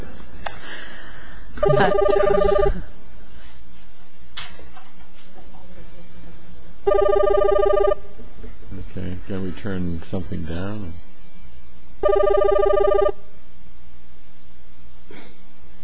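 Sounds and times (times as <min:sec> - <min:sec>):
phone ringing with bright warbling electronic tone: 0:01.6 - 0:02.9, 0:06.8 - 0:08.1, 0:12.0 - 0:13.2
speech: 0:01.6 - 0:03.0, 0:06.9 - 0:08.0, 0:09.3 - 0:11.1, 0:12.0 - 0:13.2.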